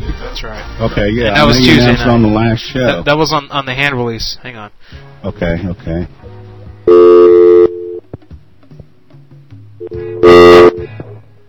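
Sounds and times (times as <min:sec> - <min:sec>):
speech: 0:00.4 - 0:06.2
quieter steady phone-line tones: 0:06.9 - 0:08.0, 0:09.8 - 0:11.0.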